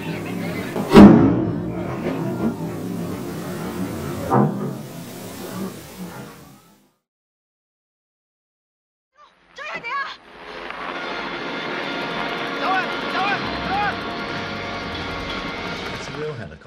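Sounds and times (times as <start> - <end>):
helicopter roar: 0.0 - 6.6, 10.2 - 16.3
people shouting: 12.6 - 14.2.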